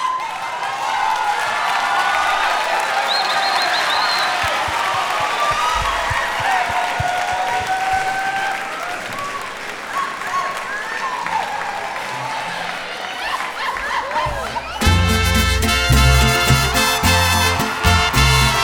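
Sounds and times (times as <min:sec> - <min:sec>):
large crowd applauding: 0:00.0 - 0:18.6
whistles: 0:03.0 - 0:06.3, 0:07.6 - 0:11.7
laughter: 0:12.1 - 0:18.6.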